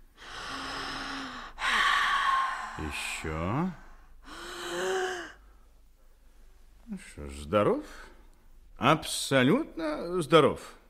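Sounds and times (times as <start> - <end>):
deep breathing during medical examination: 0.0 - 6.3
speech: 2.8 - 3.8, 6.9 - 8.1, 8.8 - 10.8.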